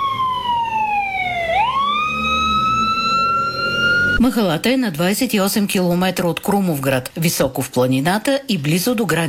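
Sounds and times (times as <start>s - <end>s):
Bulgarian emergency team ambulance siren wailing: 0.0s - 4.2s
speech: 4.2s - 9.2s.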